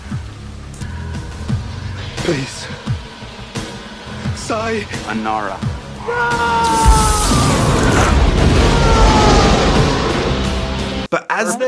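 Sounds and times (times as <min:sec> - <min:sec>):
jet fuel fire roaring: 0:00.0 - 0:11.1
speech: 0:02.3 - 0:02.9, 0:04.5 - 0:07.4, 0:11.1 - 0:11.6
plane explosion boom from jet fuel fire: 0:06.6 - 0:11.1.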